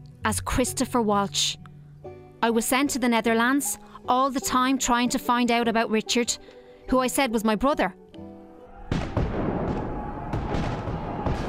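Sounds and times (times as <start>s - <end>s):
speech: 0.2s - 1.7s, 2.4s - 8.0s
cannon fire: 8.9s - 11.4s.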